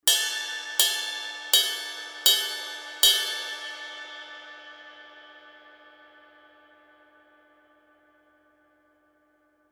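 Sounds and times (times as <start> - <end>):
23 inch sweet ride cymbal bell hits: 0.1 - 5.4.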